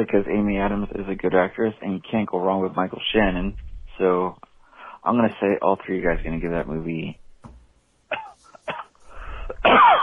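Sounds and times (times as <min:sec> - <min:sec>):
speech: 0:00.0 - 0:07.2
person coughing: 0:08.1 - 0:10.0.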